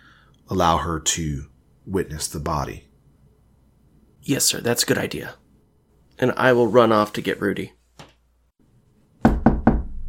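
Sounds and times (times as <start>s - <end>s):
speech: 0.5s - 2.9s, 4.2s - 5.4s, 6.2s - 7.8s
firm knocks on a wooden door: 9.2s - 10.0s.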